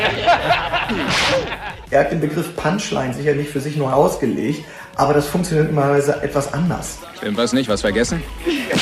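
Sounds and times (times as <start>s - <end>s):
laughter: 0.0s - 1.9s, 8.4s - 8.7s
sharp crisp slap across the face: 1.0s - 1.6s
speech: 1.9s - 8.7s.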